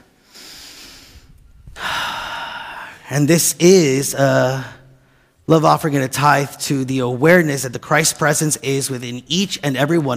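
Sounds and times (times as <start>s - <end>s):
person breathing in and out during a church service: 0.2s - 3.1s
speech: 3.1s - 4.8s, 5.5s - 10.1s.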